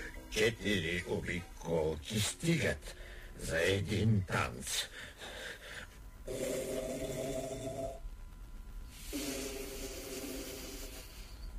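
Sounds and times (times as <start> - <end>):
speech: 0.3 - 5.4, 6.3 - 7.6
loud raspy snoring: 6.3 - 8.0, 9.1 - 11.2.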